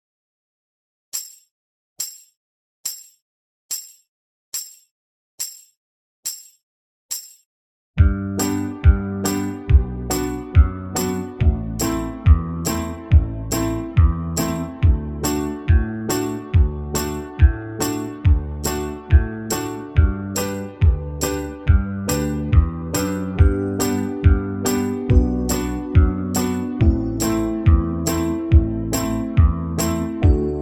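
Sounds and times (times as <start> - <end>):
banjo backing track in the key of G: 8.0 - 30.6.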